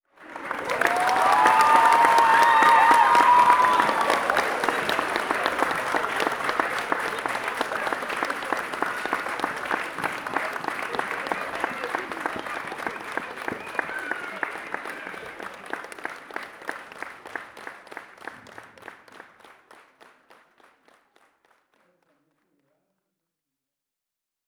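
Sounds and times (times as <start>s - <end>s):
audience clapping at the end of a show: 0.1s - 22.8s.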